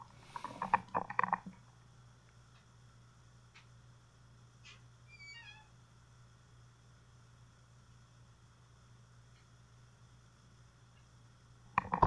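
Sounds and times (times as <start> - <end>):
steady low hum: 0.0 - 12.0
dog whining to be let out: 5.1 - 5.7.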